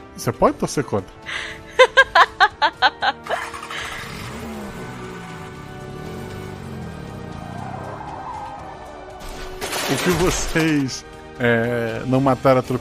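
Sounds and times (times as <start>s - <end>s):
speech: 0.2s - 1.9s, 9.9s - 12.8s
laughter: 1.4s - 4.2s
car engine revving: 3.2s - 9.5s.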